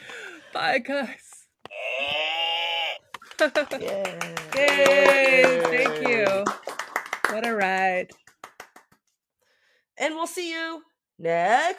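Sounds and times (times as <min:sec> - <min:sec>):
speech: 0:00.6 - 0:01.3, 0:03.4 - 0:06.6, 0:07.3 - 0:08.2, 0:10.0 - 0:11.7
person imitating a cow's moo: 0:01.7 - 0:03.1.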